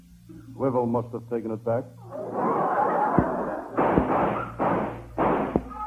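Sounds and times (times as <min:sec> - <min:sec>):
speech: 0:00.6 - 0:02.6
laughter: 0:02.1 - 0:03.8
gunshots outside a door: 0:03.2 - 0:05.7.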